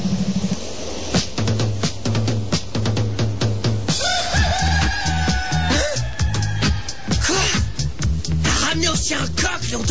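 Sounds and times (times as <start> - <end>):
steady rhythmic background: 0.1 - 9.8
rooster crowing: 3.9 - 7.9.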